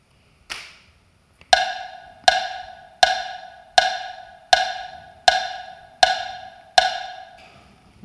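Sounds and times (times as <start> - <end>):
metronome ticking: 1.6 - 7.7.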